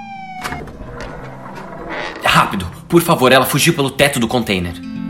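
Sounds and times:
police siren wailing: 0.0s - 2.2s
vehicle sounds: 0.0s - 2.9s
rumbling street noise: 0.0s - 3.6s
speech: 2.5s - 4.9s.

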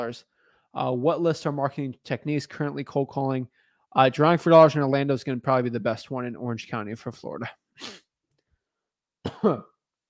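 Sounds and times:
speech: 0.0s - 8.0s, 9.2s - 9.7s
person coughing after swallowing water wrong: 9.2s - 9.8s.

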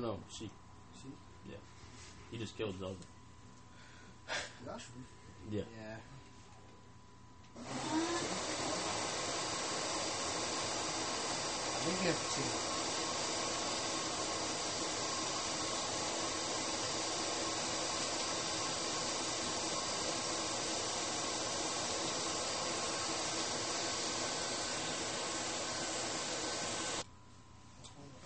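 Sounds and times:
speech: 0.0s - 3.2s, 4.3s - 6.3s, 7.6s - 8.1s, 11.8s - 12.8s
household vacuum cleaner running: 7.5s - 27.1s.

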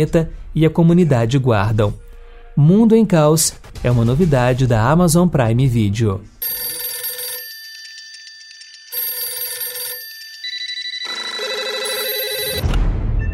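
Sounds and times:
speech: 0.0s - 2.0s, 2.6s - 6.7s
electronic telephone ringing: 6.4s - 12.7s.

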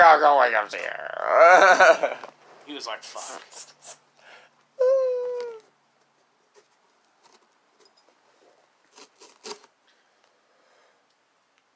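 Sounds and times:
speech: 0.2s - 4.0s
high whining cry: 4.8s - 5.7s
paper crinkling and rustling: 8.9s - 9.7s.

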